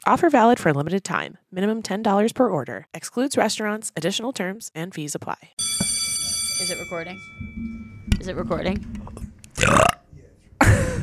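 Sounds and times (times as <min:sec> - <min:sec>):
speech: 0:00.0 - 0:05.7, 0:06.6 - 0:09.8
burping: 0:08.9 - 0:10.1.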